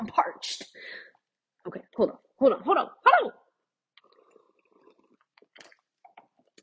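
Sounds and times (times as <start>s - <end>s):
speech: 2.0s - 2.9s
person drinking water: 3.9s - 6.6s
swallowing gulps: 3.9s - 6.6s.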